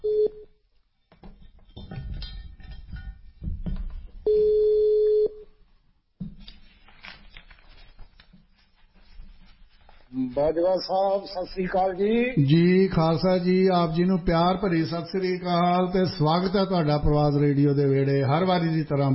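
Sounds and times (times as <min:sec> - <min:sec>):
steady telephone ringing tone: 0:00.0 - 0:00.4, 0:04.3 - 0:05.5
speech: 0:10.4 - 0:19.1.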